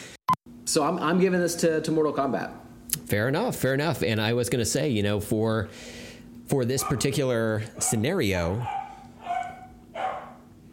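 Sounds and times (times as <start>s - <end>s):
steady low hum: 0.5s - 10.7s
speech: 0.7s - 8.8s
dog barks: 6.8s - 7.2s, 7.8s - 10.5s.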